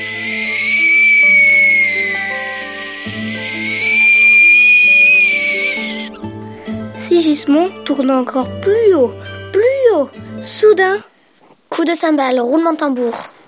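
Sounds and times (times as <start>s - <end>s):
high thin whistling: 0.0s - 6.2s
speech: 7.3s - 11.1s, 11.8s - 13.3s.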